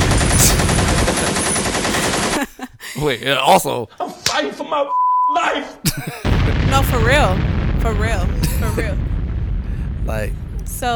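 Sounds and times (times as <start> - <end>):
machine gun fire sound effect: 0.0 - 2.5, 6.2 - 10.9
laughter: 0.4 - 7.4, 8.3 - 9.0
speech: 3.0 - 9.2, 10.1 - 10.9.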